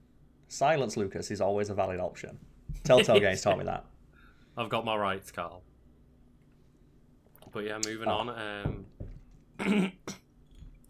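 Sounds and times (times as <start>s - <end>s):
speech: 0.5s - 3.9s, 4.6s - 5.7s, 7.6s - 8.9s, 9.6s - 10.2s
throat clearing: 9.6s - 10.3s.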